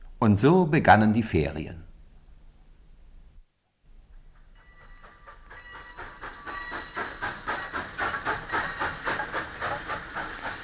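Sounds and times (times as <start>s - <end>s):
speech: 0.2s - 1.9s
steam train puffing: 4.2s - 10.6s.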